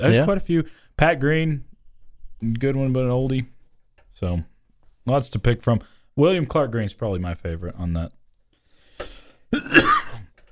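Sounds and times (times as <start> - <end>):
speech: 0.0 - 1.7, 2.4 - 3.5, 4.2 - 8.2
person coughing: 9.0 - 10.3.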